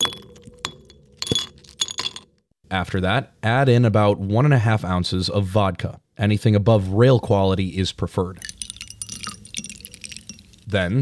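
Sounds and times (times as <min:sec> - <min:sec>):
ice clinking into a highball glass while a drink is made: 0:00.0 - 0:02.2, 0:08.4 - 0:10.7
speech: 0:02.7 - 0:08.5, 0:10.7 - 0:11.0.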